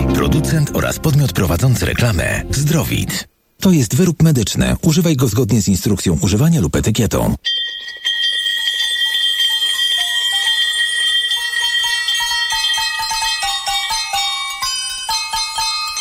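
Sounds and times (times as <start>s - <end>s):
speech: 0.4s - 7.8s
victory bells from cancer clinics ringing a Christmas carol: 7.4s - 15.9s.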